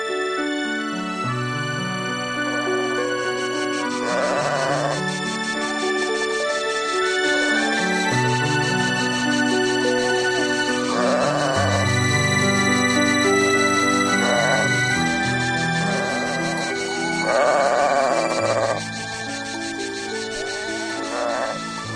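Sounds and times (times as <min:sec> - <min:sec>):
music with sustained low notes and ringing bell-like tones: 0:00.0 - 0:21.9
flock of sheep bleating on a hill at Medjugorje on a hot sunny day: 0:04.0 - 0:05.0, 0:10.9 - 0:11.9, 0:14.1 - 0:14.9, 0:15.8 - 0:18.8, 0:20.4 - 0:21.9.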